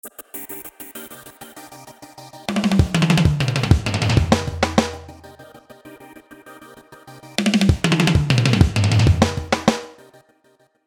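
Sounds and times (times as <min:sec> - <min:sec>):
tom drums: 0:02.5 - 0:05.2, 0:07.4 - 0:10.0.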